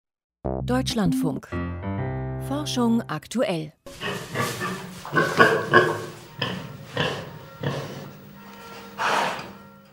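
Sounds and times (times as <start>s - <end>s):
speech: 0.4s - 6.0s
pig grunting: 3.9s - 8.2s, 8.9s - 9.6s.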